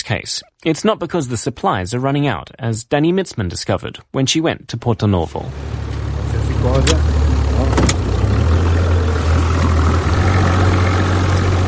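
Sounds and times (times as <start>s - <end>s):
speech: 0.1s - 6.0s, 6.6s - 7.9s
wind: 5.4s - 11.6s
boat engine running on a bay: 5.5s - 11.6s
water noise: 5.5s - 11.6s.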